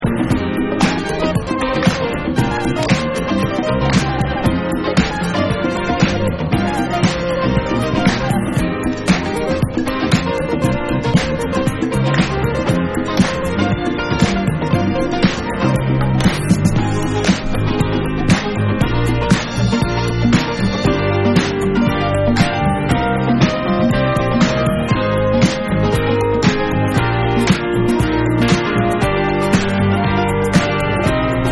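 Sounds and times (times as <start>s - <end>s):
instrumental music: 0.0s - 31.5s.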